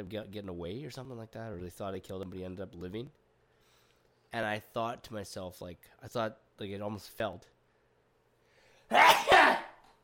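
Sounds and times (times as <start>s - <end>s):
speech: 0.0s - 3.2s, 4.3s - 7.6s
father sneezing hard: 8.9s - 9.9s.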